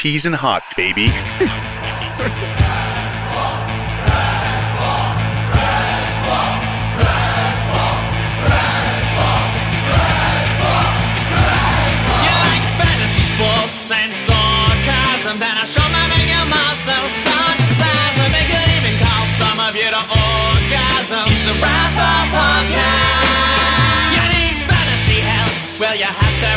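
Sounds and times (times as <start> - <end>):
speech: 0.0 - 3.0
full band theme music with driving bass line and dense guitars: 0.0 - 26.5
laughter: 0.4 - 3.3.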